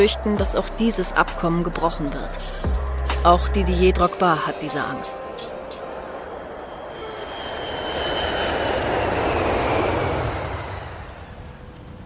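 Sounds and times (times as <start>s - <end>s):
speech: 0.0s - 5.3s
airplane engine roar heard from inside the cabin: 0.0s - 12.0s.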